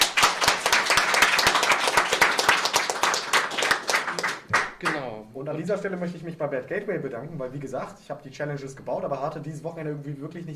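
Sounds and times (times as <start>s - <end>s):
small group clapping: 0.0s - 5.1s
speech: 5.4s - 10.5s.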